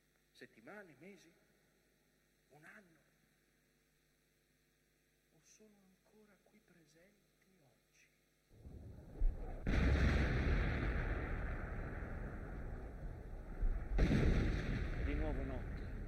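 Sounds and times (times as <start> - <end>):
speech: 0.4 - 1.5, 2.5 - 3.1, 5.4 - 7.8, 15.3 - 15.8
artillery bombardment with explosions on the Hermada front: 8.6 - 16.0.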